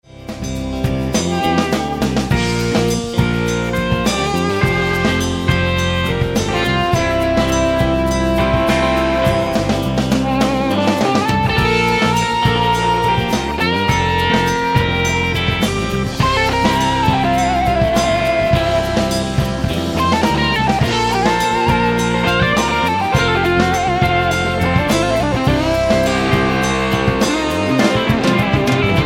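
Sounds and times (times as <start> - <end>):
Fulltone Octafuzz octave fuzz guitar effect: 0.0 - 29.0.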